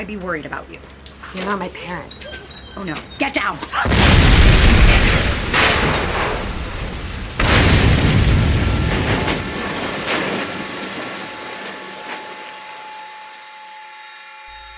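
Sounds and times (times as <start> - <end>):
speech: 0.0 - 6.3
tractor-trailer truck exploding at a mill: 3.8 - 11.1.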